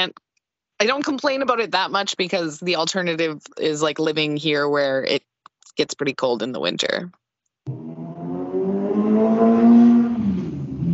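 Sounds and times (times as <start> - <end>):
speech: 0.0 - 0.2, 0.8 - 7.8
motorcycle speeding past outside: 7.7 - 10.9.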